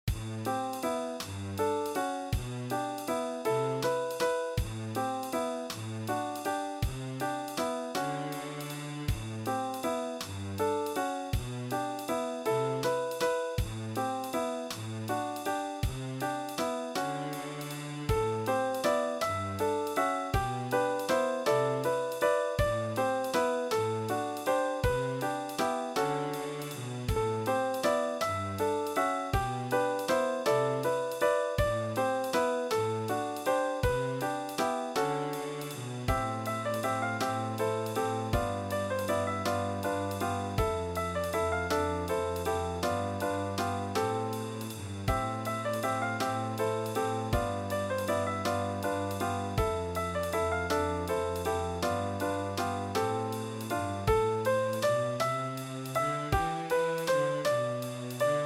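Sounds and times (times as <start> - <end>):
jazz drum kit playing: 0.1 - 58.4.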